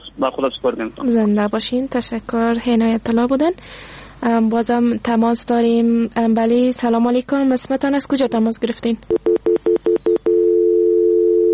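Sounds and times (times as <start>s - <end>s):
speech: 0.2s - 9.2s
telephone beeps after a call is cut off: 9.2s - 11.5s.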